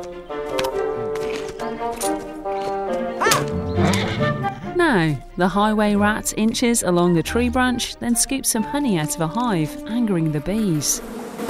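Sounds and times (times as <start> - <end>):
busy music bed with hoof-like clopping beats: 0.0 - 11.0
horse snorting and whinnying: 3.2 - 4.8
speech: 4.9 - 11.4.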